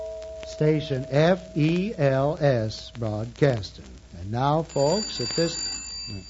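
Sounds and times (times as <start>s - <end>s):
speech: 0.6s - 6.2s
telephone bell ringing: 4.7s - 6.2s.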